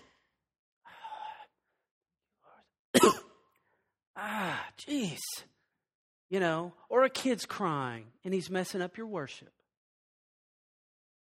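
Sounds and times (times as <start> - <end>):
person imitating coughing: 3.0 - 3.3
speech: 4.8 - 5.6, 6.3 - 9.6.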